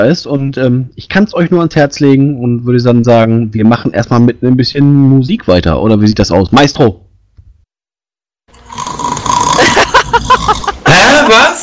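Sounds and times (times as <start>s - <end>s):
speech: 0.0s - 7.0s
rough rasping snoring with gurgling snorts: 8.6s - 9.7s
laughter: 9.6s - 11.6s.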